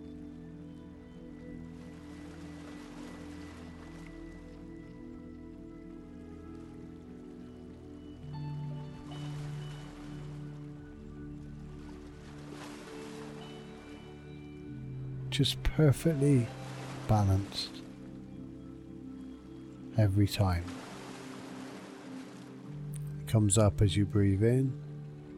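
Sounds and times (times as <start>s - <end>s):
soft sustained tonal drone: 0.0s - 25.3s
gentle sea waves washing onto a sandy beach: 1.6s - 5.2s, 6.5s - 18.2s, 19.4s - 24.8s
speech: 15.4s - 17.8s, 20.0s - 20.8s, 23.3s - 24.8s.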